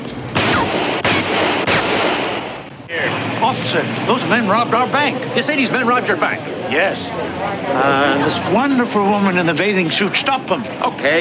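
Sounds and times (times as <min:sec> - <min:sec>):
gunshots during a bank robbery: 0:00.3 - 0:02.7
speech: 0:03.4 - 0:11.1.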